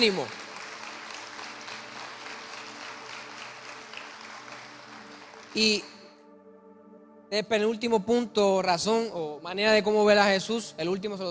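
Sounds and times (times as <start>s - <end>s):
speech: 0.0s - 0.4s, 5.5s - 6.0s, 7.3s - 11.2s
congregation applauding loudly: 0.0s - 6.0s.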